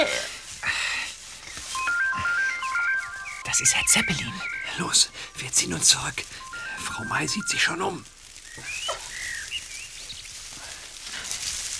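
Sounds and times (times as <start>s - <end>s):
rustling: 0.4s - 11.7s
mobile phone ringtone with bright stepping electronic melody: 1.7s - 8.0s
speech: 3.5s - 8.7s.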